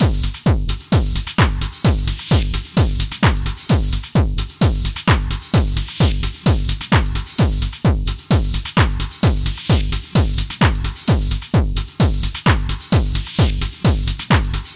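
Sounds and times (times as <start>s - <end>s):
hard techno music: 0.0s - 14.7s.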